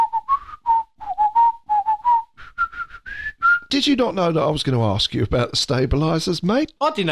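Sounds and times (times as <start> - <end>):
person whistling a short melodic tune: 0.0 - 3.7
speech: 3.7 - 7.1.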